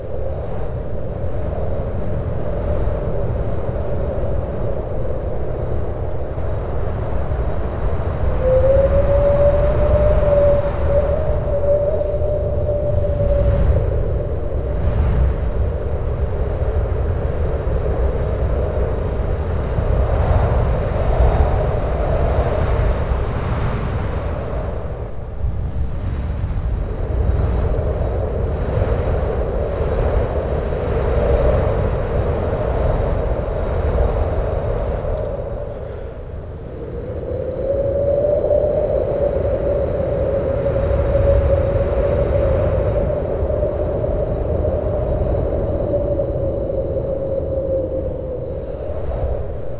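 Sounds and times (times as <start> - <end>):
hollow open air wind: 0.0 - 49.7.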